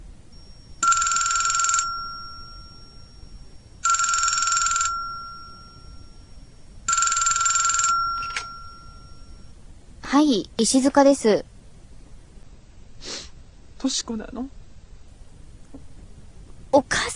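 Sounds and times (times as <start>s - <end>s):
telephone ringing with bright electronic trill: 0.4s - 9.5s
speech: 10.2s - 11.5s, 13.8s - 14.6s.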